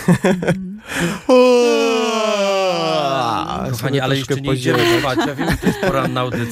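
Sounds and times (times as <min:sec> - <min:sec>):
laughter: 0:00.0 - 0:00.8, 0:04.4 - 0:06.4
speech: 0:00.1 - 0:01.7, 0:03.5 - 0:06.4
person yawning loudly as a morning voice warm-up exercise: 0:00.7 - 0:03.5.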